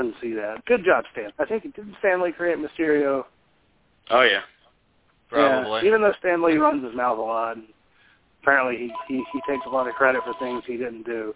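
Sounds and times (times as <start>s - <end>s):
speech: 0.0s - 3.4s, 4.1s - 4.6s, 5.3s - 7.8s, 8.4s - 11.3s
mobile phone ringing with an electronic tone: 8.9s - 10.7s.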